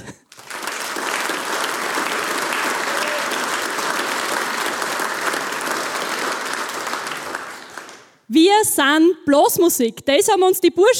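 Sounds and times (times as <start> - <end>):
applause from a sizable audience: 0.3 - 8.2
speech: 8.6 - 10.9.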